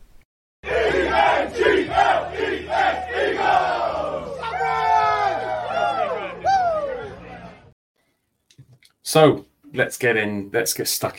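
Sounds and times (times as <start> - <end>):
stadium crowd roaring and cheering: 0.6 - 7.8
speech: 9.1 - 11.1.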